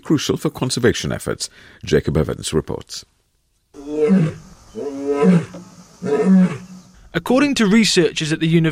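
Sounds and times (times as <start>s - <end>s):
speech: 0.1s - 3.2s, 4.0s - 4.4s, 5.2s - 8.7s
African lion roaring: 3.8s - 6.8s.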